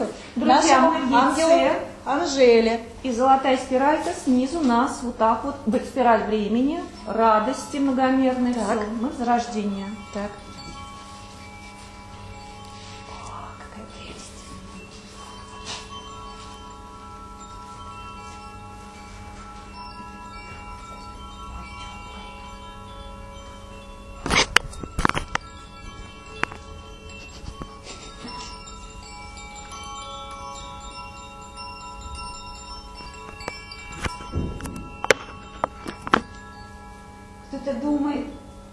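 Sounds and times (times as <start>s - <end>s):
small bell ringing softly: 0.0s - 38.7s
speech: 0.4s - 10.4s.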